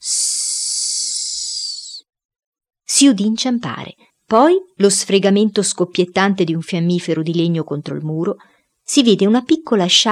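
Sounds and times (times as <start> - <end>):
person hissing as a signal: 0.0 - 2.0
speech: 3.0 - 10.1.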